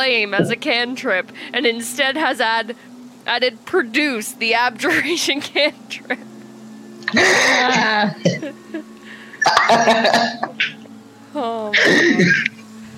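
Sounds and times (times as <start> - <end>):
speech: 0.0 - 6.3, 7.1 - 10.7, 11.4 - 12.5
voice imitating a character retching and coughing something up: 7.0 - 8.4, 9.4 - 10.8.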